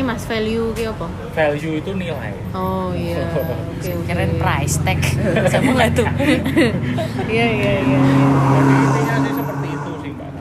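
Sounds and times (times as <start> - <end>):
speech: 0.1 - 9.6
motorbike engines roaring as the bikes pass: 4.0 - 10.3
laughter: 5.1 - 7.6
voices: 7.2 - 10.3.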